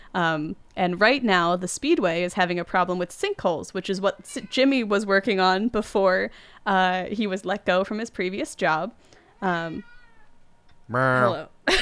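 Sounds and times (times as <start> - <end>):
speech: 0.2 - 9.9, 10.9 - 11.8
cat meowing: 4.0 - 5.0, 9.3 - 10.3.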